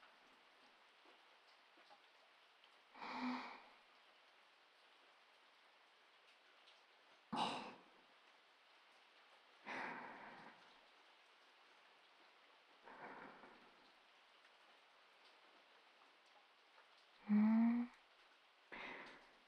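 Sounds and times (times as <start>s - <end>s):
steady rain hissing: 0.0s - 19.4s.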